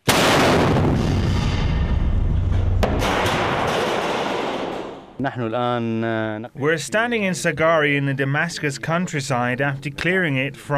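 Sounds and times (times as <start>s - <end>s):
heavy artillery fire in the Damascus countryside: 0.0s - 5.2s
sharp blast: 0.0s - 5.2s
speech: 5.2s - 10.7s.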